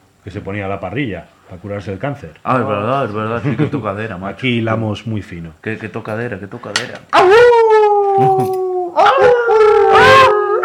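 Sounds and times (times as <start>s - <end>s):
speech: 0.2s - 7.4s, 8.2s - 9.4s
wolves howling: 7.2s - 10.6s.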